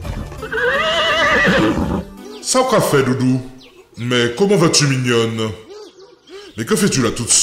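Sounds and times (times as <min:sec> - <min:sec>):
horse neighing in a forest: 0:00.4 - 0:02.2
speech: 0:01.4 - 0:05.6, 0:06.6 - 0:07.4.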